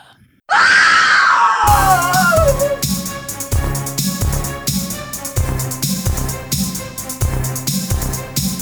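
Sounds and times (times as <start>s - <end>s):
person screaming: 0.5s - 2.8s
pounding rhythmic music track: 1.7s - 8.6s.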